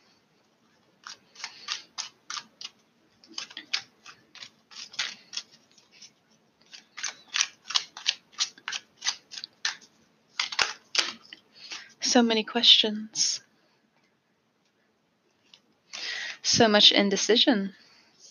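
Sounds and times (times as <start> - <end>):
deck of tarot cards being shuffled: 1.0 - 11.9
speech: 12.1 - 13.4, 16.6 - 17.8.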